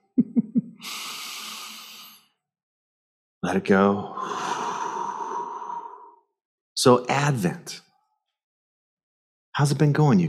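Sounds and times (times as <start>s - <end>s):
deep breath in: 0.8s - 2.3s, 4.1s - 6.2s
speech: 3.4s - 4.4s, 6.8s - 7.8s, 9.6s - 10.2s.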